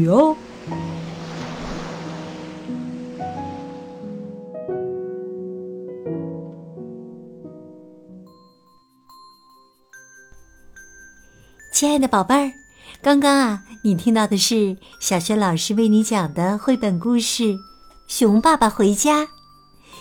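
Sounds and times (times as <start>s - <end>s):
speech: 0.0s - 0.9s, 11.8s - 19.4s
sea waves as heard in a conch shell: 0.0s - 4.8s
gentle tonal music: 0.0s - 20.0s.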